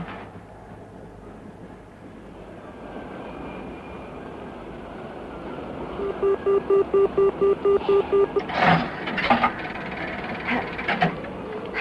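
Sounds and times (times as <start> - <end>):
train rolling along the rails: 0.0 - 6.1, 8.4 - 11.7
speech: 6.2 - 9.8.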